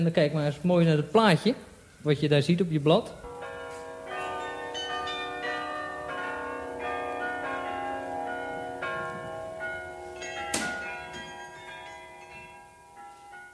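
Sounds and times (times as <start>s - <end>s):
speech: 0.0s - 3.3s
carillon bells playing a melody: 3.2s - 13.5s
sharp bell clang: 9.6s - 12.8s.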